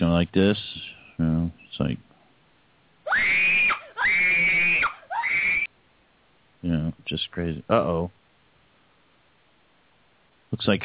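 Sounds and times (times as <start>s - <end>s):
speech: 0.1s - 1.6s, 7.4s - 8.2s, 10.5s - 10.8s
person's voice imitating a shrill wild scream: 3.1s - 5.7s.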